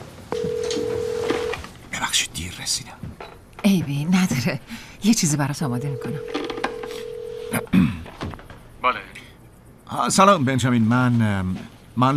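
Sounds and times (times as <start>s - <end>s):
telephone being dialed with clicks and clatter: 0.3s - 1.6s, 5.9s - 7.6s
telephone handling noise: 0.3s - 1.6s, 6.2s - 7.6s
speech: 4.0s - 6.4s, 10.1s - 12.1s.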